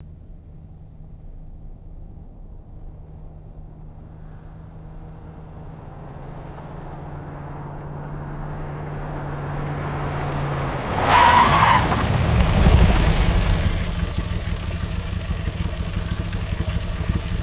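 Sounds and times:
vintage car fast approach, stop and engine turning off: 0.0s - 17.4s.

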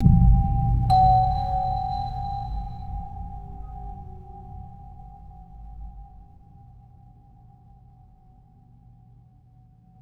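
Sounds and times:
muted bell strike with descending resonant hum: 0.0s - 6.4s.

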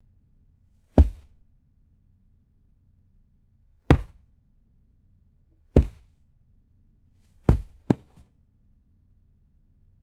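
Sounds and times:
hard soled shoe dropping on carpet: 1.0s - 1.3s, 3.9s - 4.2s, 5.8s - 6.1s, 7.5s - 8.2s.

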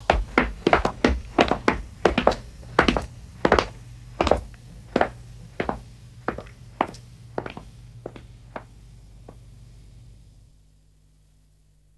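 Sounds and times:
footsteps on stone stairs: 0.0s - 8.7s.

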